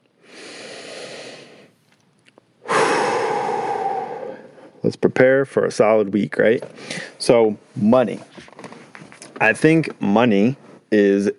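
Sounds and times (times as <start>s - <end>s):
person breathing deeply: 0.2s - 1.8s, 2.6s - 4.8s
speech: 4.8s - 8.6s, 9.4s - 11.3s.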